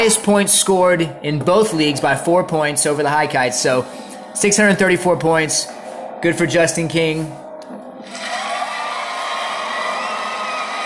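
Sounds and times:
speech: 0.0s - 8.3s
crowd cheering and whooping: 8.0s - 10.8s.

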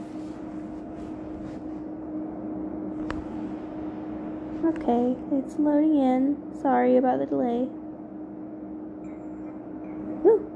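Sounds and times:
air conditioner humming: 0.0s - 10.5s
speech: 4.6s - 7.8s.

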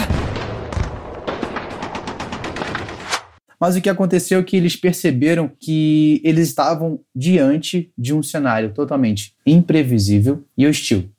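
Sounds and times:
dense rumbling explosions: 0.0s - 3.1s
rapid bursts of gunfire crackling: 0.0s - 3.4s
speech: 3.6s - 11.1s.

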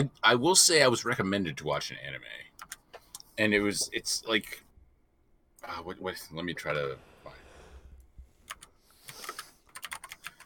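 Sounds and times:
speech: 0.0s - 2.8s, 3.4s - 4.6s, 5.6s - 7.4s
typing on a computer keyboard with plastic key clicks: 2.6s - 2.8s, 8.5s - 10.4s.

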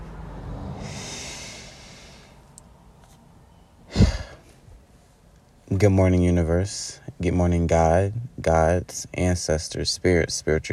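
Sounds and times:
forceful breathy exhale during a breathing exercise: 0.6s - 2.4s, 3.9s - 4.4s
slow airy inhale during a breathing exercise: 0.8s - 2.4s, 3.9s - 4.6s
speech: 5.8s - 10.7s.

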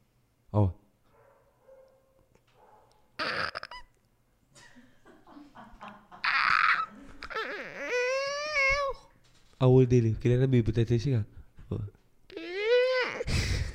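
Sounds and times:
speech: 0.5s - 0.8s, 9.6s - 12.0s
person vocally imitating a cat meowing: 3.2s - 3.9s, 6.2s - 9.1s, 12.3s - 13.3s
laughter: 4.6s - 7.2s.

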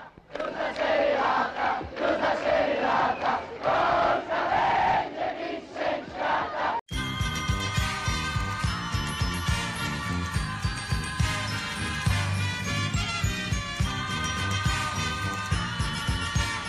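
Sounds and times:
large crowd of football fans cheering and chanting at an airport: 0.0s - 16.6s
music: 6.9s - 16.6s.

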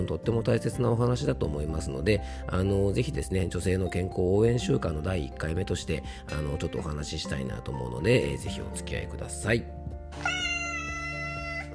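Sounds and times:
speech: 0.0s - 10.4s
cat meowing: 10.2s - 11.7s.

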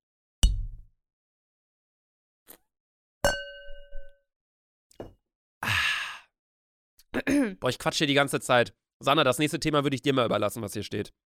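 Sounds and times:
glasses clinking together in a toast: 3.3s - 4.1s
speech: 7.2s - 11.3s.

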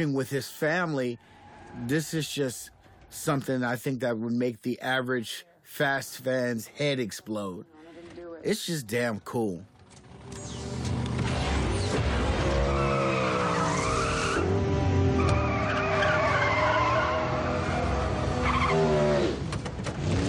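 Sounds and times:
speech: 0.0s - 9.7s
tires squealing as a car of over 2,000 horsepower skids: 1.2s - 3.1s, 10.4s - 20.2s
car engine of over 2,000 horsepower roaring: 9.8s - 20.2s.

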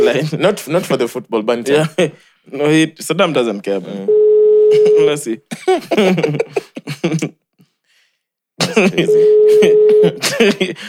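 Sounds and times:
speech: 0.1s - 7.4s, 8.6s - 10.8s
electronic telephone ring tone as a call is placed: 4.1s - 5.2s, 9.1s - 10.2s
laughter: 4.7s - 7.4s, 8.6s - 10.8s.

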